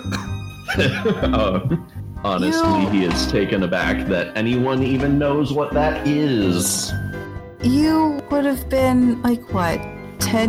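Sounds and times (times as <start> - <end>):
small throaty cough: 0.0 - 1.2
laughter: 0.0 - 5.1
speech: 0.8 - 10.4.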